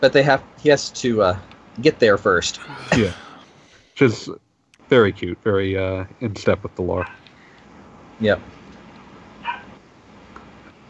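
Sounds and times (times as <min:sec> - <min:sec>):
speech: 0:00.0 - 0:03.2, 0:04.0 - 0:07.2, 0:08.2 - 0:08.6
low steady room hum: 0:00.0 - 0:10.8
faint short yip: 0:09.4 - 0:09.7
dog bark: 0:09.4 - 0:09.8.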